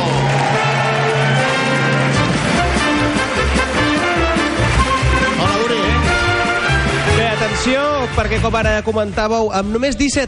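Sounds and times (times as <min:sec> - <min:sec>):
audience applause: 0:00.0 - 0:07.3
bass-heavy musical backing: 0:00.0 - 0:10.2
speech: 0:07.6 - 0:10.2.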